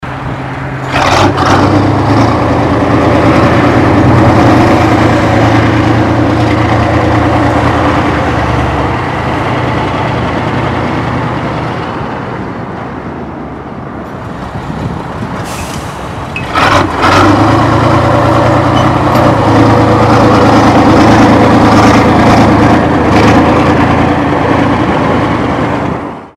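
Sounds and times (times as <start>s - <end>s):
Kirovets K-700 tractor engine running: 0.0s - 12.8s, 14.2s - 26.3s.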